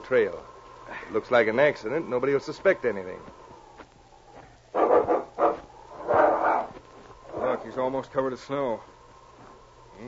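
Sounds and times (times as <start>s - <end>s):
speech: 0.1s - 0.5s, 1.1s - 3.4s, 7.7s - 8.9s
dog barking and growling: 4.7s - 7.7s.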